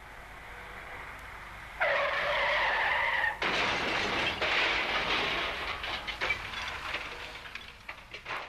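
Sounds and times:
car tyres skidding in a road crash: 0:01.7 - 0:03.4
crash debris rattling and clattering: 0:03.4 - 0:08.4
heavy car crash impact: 0:03.4 - 0:08.4.

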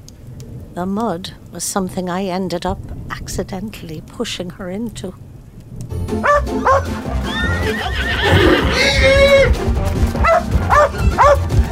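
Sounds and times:
speech: 0:00.8 - 0:05.3, 0:05.9 - 0:11.5
dog barking while chasing a stray chicken: 0:06.2 - 0:06.9, 0:10.2 - 0:11.7
spooked horse whinnying: 0:06.6 - 0:09.6.

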